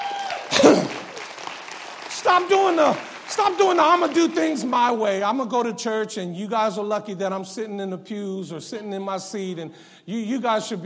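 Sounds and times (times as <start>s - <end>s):
church audience clapping: 0.0s - 5.2s
speech: 2.3s - 10.8s.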